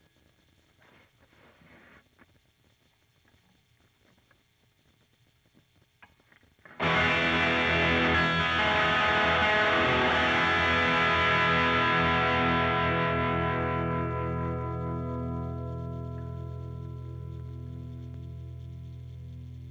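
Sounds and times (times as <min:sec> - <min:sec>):
de-noised guitar picked strongly: 0:06.7 - 0:19.6.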